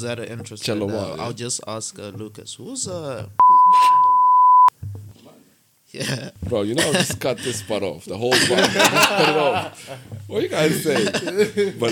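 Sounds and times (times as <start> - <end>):
speech: 0.0 - 3.5, 5.9 - 11.8
loud steady high-pitched beep: 3.4 - 4.7
laughter: 8.3 - 11.8.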